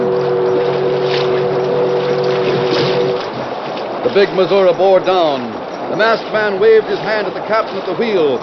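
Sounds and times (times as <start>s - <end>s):
paddle-wheel steamboat whistle blowing a warning on a river: 0.0s - 3.4s
paddle-wheel steamboat engine and river water rushing: 0.0s - 8.4s
speech: 4.2s - 8.4s.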